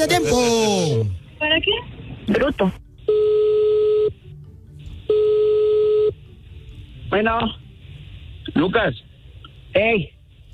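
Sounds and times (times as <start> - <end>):
speech: 0.0 - 2.8, 7.1 - 7.6, 8.6 - 9.0, 9.8 - 10.2
telephone line tones during a call: 3.1 - 4.2, 5.1 - 6.2.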